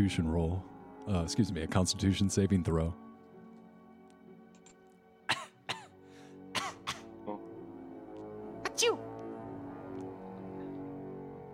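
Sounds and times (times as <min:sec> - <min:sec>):
speech: 0:00.0 - 0:03.0
rough coughs voiced for were-rats in a tabletop role-playing game: 0:05.3 - 0:07.4.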